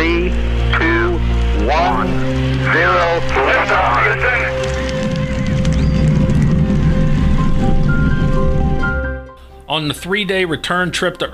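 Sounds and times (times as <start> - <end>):
thin broadcast-like hum: 0.0 - 8.7
Apollo 11 rocket engines roaring at liftoff: 0.0 - 9.3
speech: 9.8 - 11.3.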